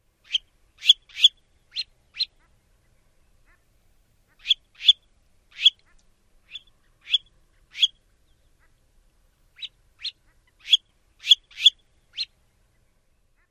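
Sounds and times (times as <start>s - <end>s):
red phalarope zweet calls: 0.2s - 3.7s, 4.3s - 8.9s, 9.5s - 13.4s.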